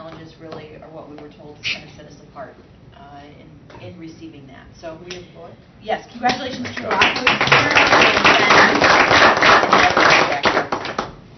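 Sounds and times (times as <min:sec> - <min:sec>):
speech: 0:01.0 - 0:08.9
audience applause at an award celebration meeting: 0:06.7 - 0:11.1.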